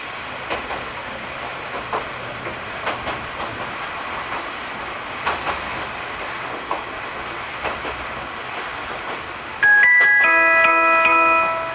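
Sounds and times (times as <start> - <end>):
train rolling along the rails heard from inside: 0.0 - 11.7
bright electronic chime: 9.6 - 11.7.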